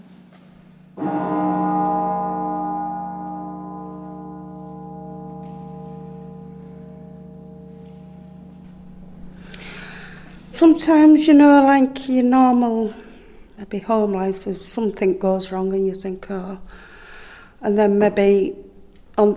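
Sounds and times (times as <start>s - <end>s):
single deep church bell strike: 0.8s - 11.7s
speech: 10.6s - 13.0s, 13.6s - 16.9s, 17.6s - 18.6s, 19.2s - 19.3s.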